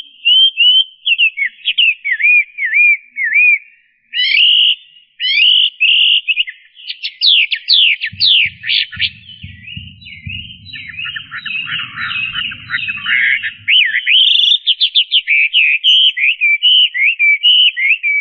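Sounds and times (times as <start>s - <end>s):
Chinese hwamei song: 0.0s - 18.1s
low rumbling background: 8.2s - 14.2s.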